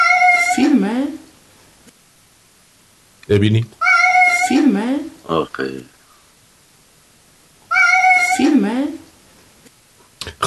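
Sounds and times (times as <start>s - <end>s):
cat meowing in a played video: 0.0s - 0.8s, 3.8s - 4.8s, 7.7s - 8.6s
speech: 3.3s - 3.8s, 4.5s - 6.0s.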